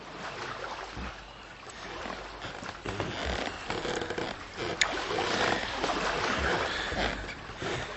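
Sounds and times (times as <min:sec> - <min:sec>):
water sloshing around a homemade canoe paddled along the coast: 0:00.0 - 0:07.9
paddle stroke thumps and knocks: 0:02.4 - 0:07.9.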